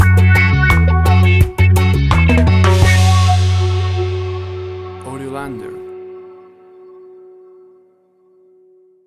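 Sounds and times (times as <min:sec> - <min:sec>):
reggae guitar rhythm stinger: 0:00.0 - 0:07.3.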